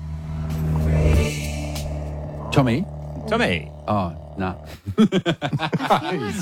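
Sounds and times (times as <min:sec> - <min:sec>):
old car engine rumbling past: 0:00.0 - 0:04.7
speech: 0:02.6 - 0:06.4
laughter: 0:04.7 - 0:06.4.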